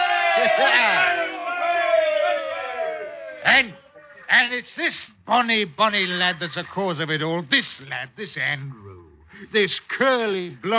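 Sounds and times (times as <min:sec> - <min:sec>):
group of sailors cheering in hurrahs: 0:00.0 - 0:04.3
speech: 0:00.4 - 0:01.4, 0:03.4 - 0:10.7
man shouting: 0:00.4 - 0:02.6.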